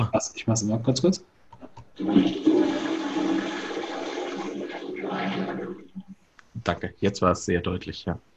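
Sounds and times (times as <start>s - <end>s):
speech: 0.0s - 1.3s, 2.0s - 2.5s, 6.6s - 8.3s
flat-flush toilet flushing in a short burst: 2.0s - 6.1s
toilet water draining off with gurgles: 2.0s - 6.2s.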